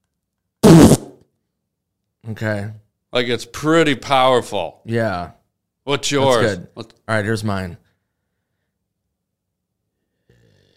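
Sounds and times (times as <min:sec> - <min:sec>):
person blowing a wet raspberry imitating a fart: 0:00.6 - 0:01.2
speech: 0:02.3 - 0:07.8.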